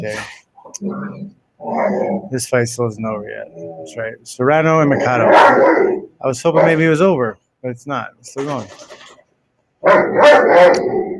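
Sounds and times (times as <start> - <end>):
speech: 0.0 - 9.0, 9.8 - 11.1
dog giving a drawn-out groaning bark: 5.3 - 5.9, 9.8 - 11.0.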